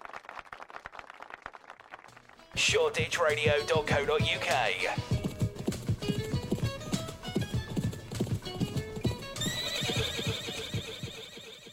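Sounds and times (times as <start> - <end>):
speech: 2.5 - 5.2
horse hooves clip-clopping: 4.9 - 11.4
loud high horse whinny: 9.4 - 11.7.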